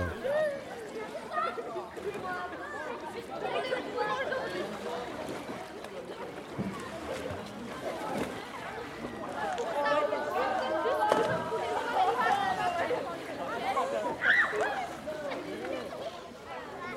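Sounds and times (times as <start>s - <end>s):
children's voices chattering and calling out at a lakeside beach: 0.0s - 0.7s
gentle water sounds at a lakeside beach: 0.0s - 16.9s.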